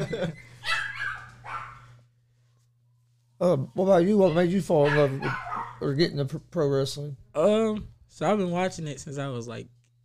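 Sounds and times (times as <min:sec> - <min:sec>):
steady low electrical hum: 0:00.0 - 0:10.0
speech: 0:00.2 - 0:00.5, 0:03.4 - 0:09.8
dog barking sharp high-pitched barks: 0:00.6 - 0:01.9, 0:04.2 - 0:05.8.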